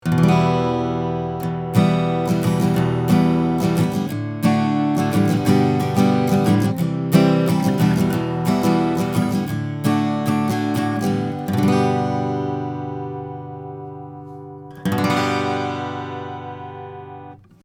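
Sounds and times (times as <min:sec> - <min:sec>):
acoustic guitar played at the 15th fret, recorded with an Austrian Audio OC 16 at 40cm: 0:00.0 - 0:17.6.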